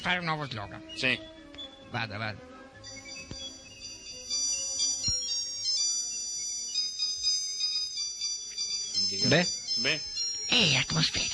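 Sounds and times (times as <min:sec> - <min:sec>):
speech: 0:00.0 - 0:02.5, 0:09.2 - 0:11.3
small watch's built-in alarm ringing: 0:02.7 - 0:11.3.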